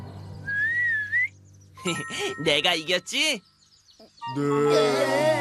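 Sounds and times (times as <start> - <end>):
strained failed whistling attempt: 0.4 - 1.3
speech: 1.9 - 3.5, 4.3 - 5.3.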